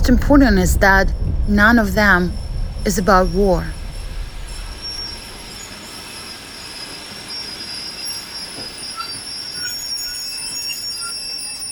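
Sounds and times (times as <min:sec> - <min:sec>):
speech: 0:00.0 - 0:03.8
train running on railway tracks: 0:00.0 - 0:10.6
train wheel squeals: 0:03.8 - 0:11.6.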